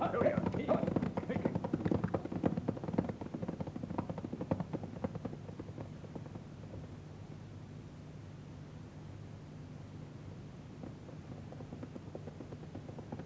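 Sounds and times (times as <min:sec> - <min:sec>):
hooves of horses and pack horses clip-clopping on a trail: 0:00.0 - 0:06.9, 0:10.8 - 0:13.2.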